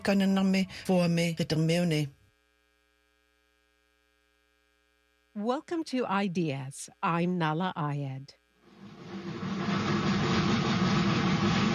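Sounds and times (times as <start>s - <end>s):
speech: 0.0s - 2.2s, 5.4s - 8.4s
steam locomotive engine chugging: 8.8s - 11.7s.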